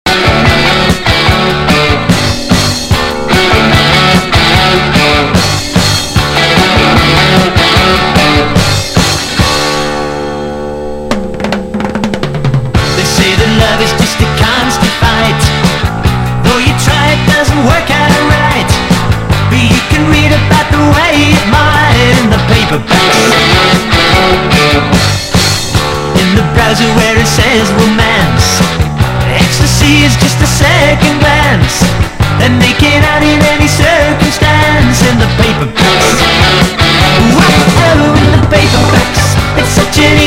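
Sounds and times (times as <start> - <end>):
band playing: 0.1 - 40.2.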